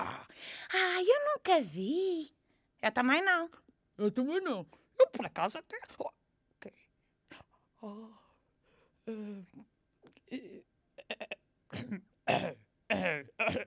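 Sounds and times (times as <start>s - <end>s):
speech: 0.7s - 6.8s, 7.8s - 8.2s, 9.1s - 9.7s, 10.3s - 13.6s
throat clearing: 11.0s - 13.6s
harsh loud coughs: 11.2s - 13.6s.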